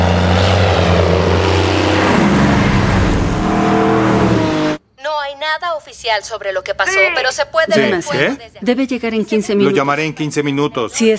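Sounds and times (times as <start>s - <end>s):
airplane flying overhead with engine drone: 0.0s - 4.8s
speech: 6.0s - 11.1s.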